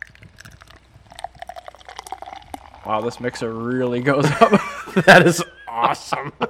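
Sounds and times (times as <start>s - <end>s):
beer pouring into a pint glass: 0.0s - 4.5s
speech: 2.8s - 6.4s
laughter: 4.2s - 6.4s.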